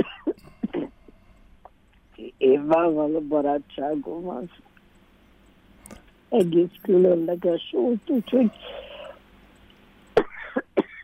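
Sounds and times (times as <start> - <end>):
person coughing: 0.0 - 1.1, 10.2 - 11.0
speech: 2.5 - 4.7, 6.3 - 8.8.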